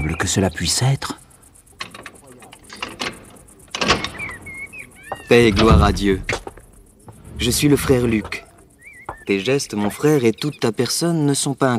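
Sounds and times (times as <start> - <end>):
speech: 0.1 - 1.2, 5.3 - 6.4, 7.4 - 8.4, 9.3 - 11.7
louder rattling impact on a convent door: 5.3 - 8.5
sharp knocks and clunks on the heavy door of a convent: 5.4 - 6.6.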